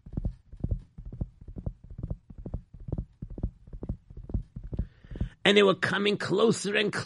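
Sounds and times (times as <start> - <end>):
horses galloping: 0.0 - 5.4
speech: 5.5 - 7.0.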